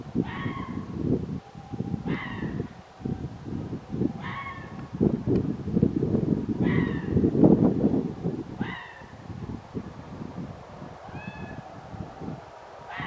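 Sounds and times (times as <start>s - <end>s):
steady low rumbling noise: 0.0s - 13.0s
red fox barking: 0.2s - 0.9s, 2.0s - 2.8s, 4.2s - 4.8s, 6.6s - 7.2s, 8.6s - 9.1s, 12.9s - 13.0s.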